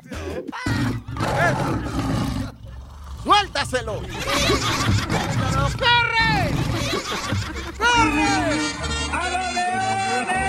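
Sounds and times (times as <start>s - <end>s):
laughter: 0.0s - 2.1s, 3.3s - 10.4s
hungry lions roaring with deep growling bursts: 0.7s - 7.8s
speech: 3.6s - 10.4s.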